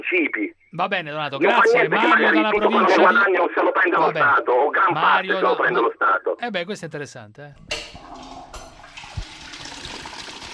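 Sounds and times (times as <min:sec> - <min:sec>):
speech: 0:00.0 - 0:07.9
toilet flush from someone pulling the chain, heard over a telephone line: 0:07.7 - 0:10.5.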